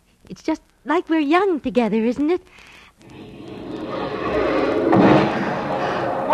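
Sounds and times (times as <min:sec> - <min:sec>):
speech: 0:00.3 - 0:03.2
fireworks booming and crackling: 0:03.0 - 0:06.3.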